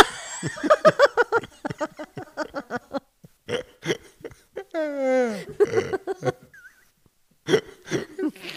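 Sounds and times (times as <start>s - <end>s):
laughter: 0.0s - 3.0s, 5.4s - 6.7s
long loud belch: 5.6s - 6.0s
people talking: 8.2s - 8.5s.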